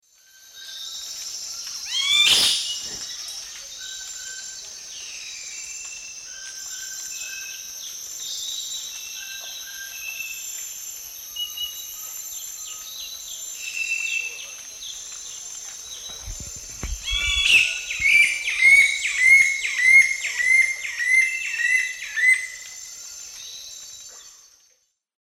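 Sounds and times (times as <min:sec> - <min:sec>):
Hylexetastes stresemanni calling and singing in S. America Eastern Lowlands: 0:01.9 - 0:03.1, 0:15.9 - 0:22.7.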